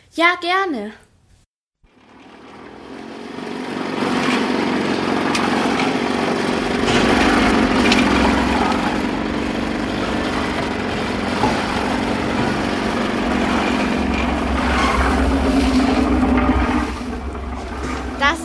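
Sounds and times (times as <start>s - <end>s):
speech: 0.2s - 1.0s
engine machinery droning at a construction site: 1.9s - 18.4s
clanks and knocks at a construction site: 3.7s - 18.4s
continuous low rumble at a construction site: 6.5s - 18.4s.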